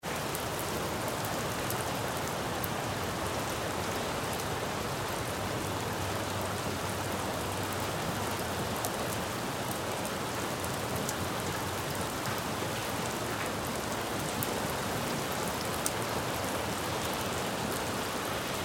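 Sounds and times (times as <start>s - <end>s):
rain splattering on a city street: 0.0s - 18.6s.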